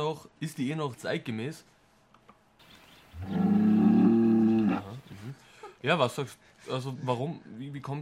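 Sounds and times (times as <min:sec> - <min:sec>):
speech: 0:00.0 - 0:01.8, 0:03.2 - 0:03.4, 0:04.8 - 0:07.9
cow mooing: 0:03.2 - 0:05.0.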